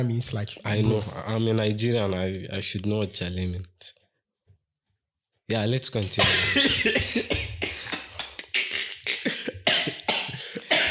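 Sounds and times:
speech: 0:00.0 - 0:04.0, 0:05.5 - 0:07.5
person coughing: 0:06.2 - 0:10.8.

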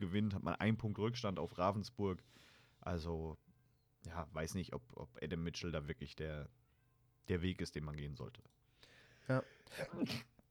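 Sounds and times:
speech: 0:00.0 - 0:03.4, 0:04.0 - 0:06.6, 0:07.2 - 0:08.6, 0:09.3 - 0:10.3
person sneezing: 0:09.7 - 0:10.3.

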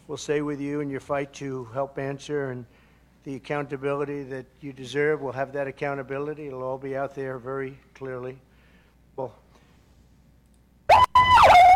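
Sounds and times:
speech: 0:00.1 - 0:08.5, 0:09.2 - 0:09.4
siren wailing: 0:10.9 - 0:11.7.

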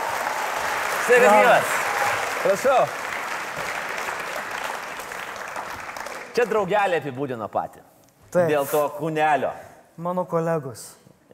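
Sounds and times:
audience applause welcoming a guest at an evening show: 0:00.0 - 0:06.7
speech: 0:01.1 - 0:01.8, 0:02.4 - 0:03.0, 0:06.4 - 0:11.3.

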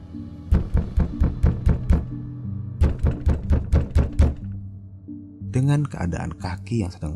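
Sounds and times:
pounding on a house door: 0:00.5 - 0:02.2, 0:02.8 - 0:04.6
speech: 0:05.6 - 0:07.1.

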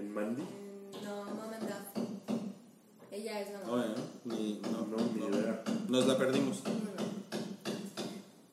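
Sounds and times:
speech: 0:00.1 - 0:01.5
hammer striking: 0:00.9 - 0:02.6, 0:03.9 - 0:08.3.

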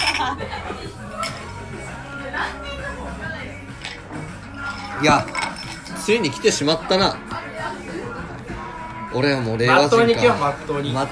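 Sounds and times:
glasses clinking in a toast: 0:00.0 - 0:00.4, 0:03.7 - 0:06.4
people laughing: 0:00.0 - 0:03.0
murmur of people talking: 0:00.0 - 0:11.1
speech: 0:05.0 - 0:05.4, 0:06.1 - 0:07.3, 0:09.2 - 0:11.1.

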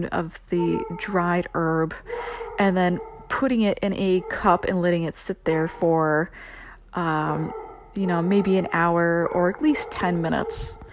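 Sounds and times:
speech: 0:00.0 - 0:10.8
dog barking in the background: 0:00.6 - 0:01.4, 0:02.1 - 0:04.7, 0:07.4 - 0:10.9.

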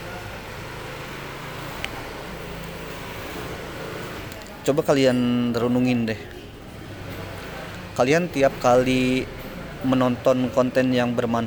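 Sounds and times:
broad outdoor noise: 0:00.0 - 0:11.4
motorcycle engine rumbling on campus: 0:00.0 - 0:11.4
speech: 0:04.7 - 0:06.4, 0:08.0 - 0:11.4.

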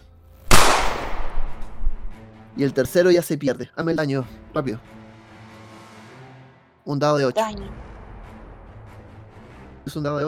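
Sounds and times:
gunshot sound effect: 0:00.5 - 0:02.2
speech: 0:02.6 - 0:05.0, 0:06.9 - 0:07.9, 0:09.8 - 0:10.2.

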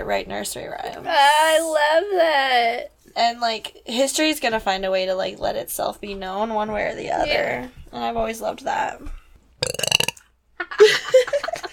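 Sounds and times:
speech: 0:00.0 - 0:09.8, 0:10.7 - 0:11.6
person burping: 0:09.6 - 0:10.2.

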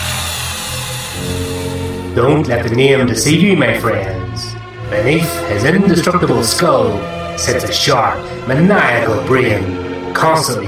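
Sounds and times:
power drill whirring: 0:00.0 - 0:02.1
speech: 0:02.2 - 0:10.6.

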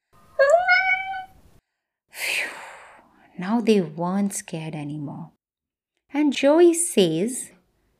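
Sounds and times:
little lost kitten meowing in a garden: 0:00.4 - 0:01.4
speech: 0:03.4 - 0:05.4, 0:06.1 - 0:07.6.

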